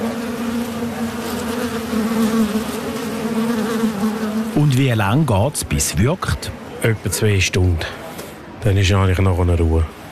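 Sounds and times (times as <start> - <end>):
wasps buzzing around a nest entrance in a house facade: 0.0 - 4.8
speech: 4.9 - 8.0, 8.6 - 10.0.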